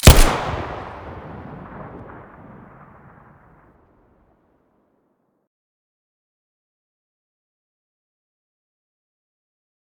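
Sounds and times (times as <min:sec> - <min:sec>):
Colt 1911 pistol muzzle blast: 0:00.0 - 0:02.2.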